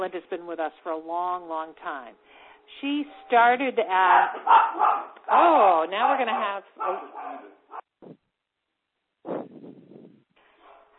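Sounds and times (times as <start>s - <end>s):
speech: 0.0s - 8.2s
dog barking and yipping: 4.1s - 5.2s, 6.0s - 7.8s, 10.6s - 10.9s.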